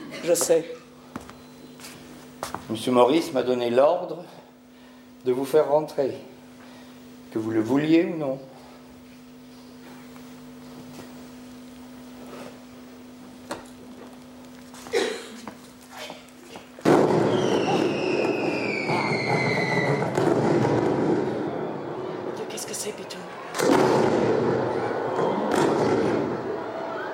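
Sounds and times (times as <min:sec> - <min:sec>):
faint steady hum: 0:00.0 - 0:27.1
speech: 0:00.2 - 0:00.8, 0:02.7 - 0:04.4, 0:05.2 - 0:06.3, 0:07.3 - 0:08.5
fireworks bursting: 0:16.8 - 0:21.5
thin descending fireworks whistles: 0:17.2 - 0:20.1.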